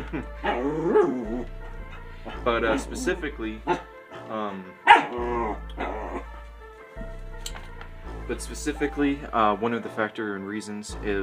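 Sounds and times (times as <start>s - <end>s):
speech: 0.1s - 1.6s, 2.2s - 6.3s, 8.3s - 11.2s
dog barking with whiny pitch: 0.4s - 1.3s, 3.6s - 4.2s, 4.8s - 5.2s.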